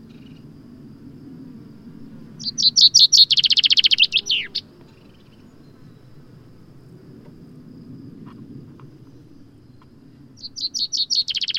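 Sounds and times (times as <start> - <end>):
common chaffinch singing: 2.3 - 6.2, 9.1 - 11.5.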